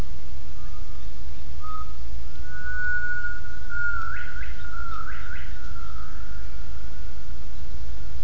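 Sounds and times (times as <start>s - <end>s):
heavy low rumbling background noise: 0.0s - 8.2s
gibbon sustained pure whistled call: 1.6s - 6.6s.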